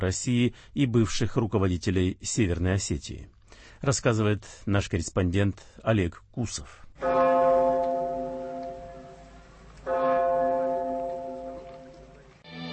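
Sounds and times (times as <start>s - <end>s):
speech: 0.0s - 7.2s
heavy memorial bell tolling over former school in Beslan: 7.0s - 12.1s.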